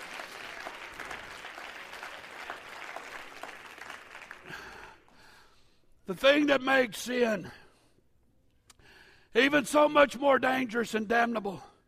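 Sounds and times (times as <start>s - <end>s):
church audience applause during a sermon: 0.0s - 5.0s
speech: 6.1s - 7.6s, 9.3s - 11.7s.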